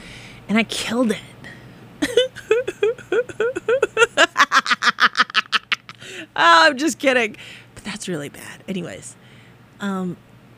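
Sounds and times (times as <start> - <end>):
steady hum-like tone: 0.0 - 10.5
speech: 0.5 - 1.3, 6.4 - 9.2, 9.8 - 10.3
person clearing throat: 2.0 - 3.8.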